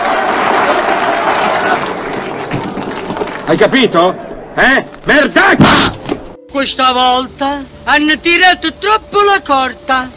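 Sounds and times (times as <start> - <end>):
sustained audience applause: 0.0 - 3.9
speech: 3.5 - 6.0, 6.6 - 10.1.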